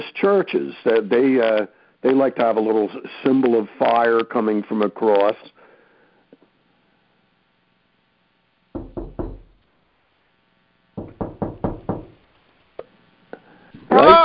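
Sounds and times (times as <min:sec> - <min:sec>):
speech: 0:00.0 - 0:05.6
firm knocking: 0:08.8 - 0:09.6, 0:11.0 - 0:12.2.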